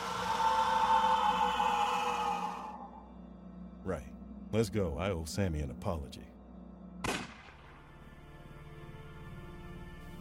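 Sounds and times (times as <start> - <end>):
low humming ambient drone in video game: 0.0 - 10.1
speech: 3.9 - 6.4
video game gunshot: 7.0 - 7.8.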